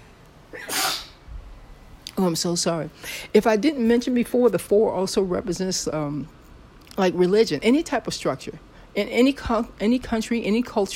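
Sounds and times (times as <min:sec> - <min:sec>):
person sneezing: 0:00.5 - 0:01.2
speech: 0:02.2 - 0:06.4, 0:07.0 - 0:10.9.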